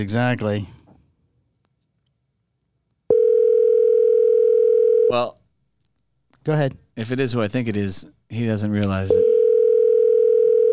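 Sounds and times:
speech: 0:00.0 - 0:00.8, 0:05.1 - 0:05.4, 0:06.4 - 0:09.2
telephone dial tone: 0:03.1 - 0:05.1, 0:09.2 - 0:10.7.

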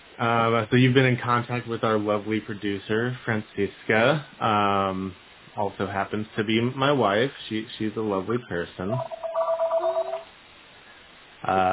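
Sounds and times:
speech: 0:00.2 - 0:09.2, 0:11.4 - 0:11.7
landline telephone ringing in electronic bursts: 0:09.0 - 0:10.3.

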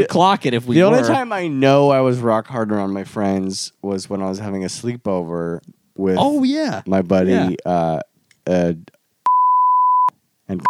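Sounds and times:
speech: 0:00.0 - 0:09.0, 0:10.5 - 0:10.6
steady pure high-pitched censor bleep: 0:09.3 - 0:10.6.

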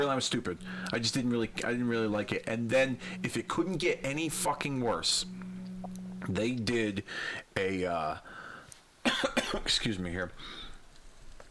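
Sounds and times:
speech: 0:00.0 - 0:05.4, 0:06.2 - 0:08.4, 0:09.0 - 0:10.6
faint noise: 0:00.0 - 0:11.4
short cough: 0:09.1 - 0:09.7
throat clearing after a sip of a drink: 0:09.1 - 0:09.7.

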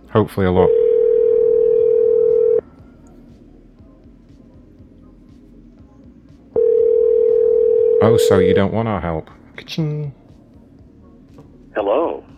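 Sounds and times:
low noise: 0:00.0 - 0:12.3
speech: 0:00.1 - 0:00.8, 0:08.0 - 0:10.2, 0:11.8 - 0:12.3
telephone dial tone: 0:00.7 - 0:02.6, 0:06.6 - 0:08.0.

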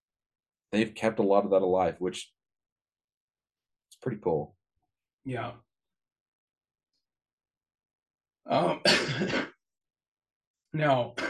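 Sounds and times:
speech: 0:00.7 - 0:02.4, 0:04.0 - 0:04.6, 0:05.2 - 0:05.6, 0:08.5 - 0:09.5, 0:10.7 - 0:11.2
person clearing throat: 0:08.5 - 0:09.6
person coughing: 0:08.5 - 0:09.6.

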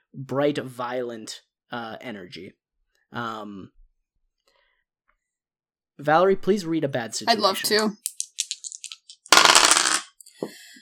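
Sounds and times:
speech: 0:00.2 - 0:03.8, 0:06.0 - 0:08.1
dice tumbling onto a hard table: 0:08.2 - 0:10.1.

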